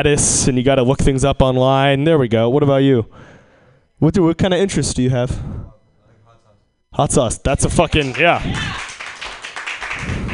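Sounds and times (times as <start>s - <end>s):
speech: 0.0s - 3.3s, 4.0s - 5.6s, 6.9s - 8.8s
audience applause: 7.9s - 10.3s.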